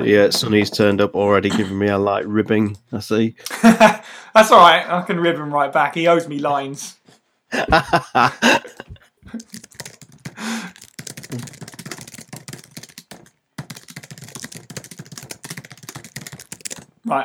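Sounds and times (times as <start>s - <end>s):
speech: 0.0s - 9.6s
laughter: 3.4s - 4.8s, 7.5s - 9.8s
mechanical keyboard typing: 8.7s - 16.9s.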